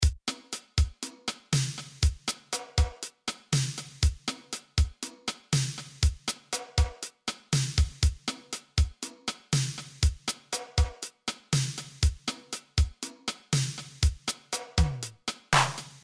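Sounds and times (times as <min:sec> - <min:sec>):
Linn 9000: 0:00.0 - 0:16.0.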